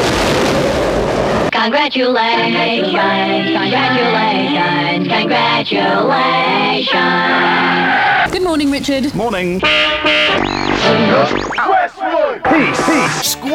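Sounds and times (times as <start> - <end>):
rocket blast-off sound effect in a radio jingle: 0.0 - 1.5
speech: 1.6 - 13.5.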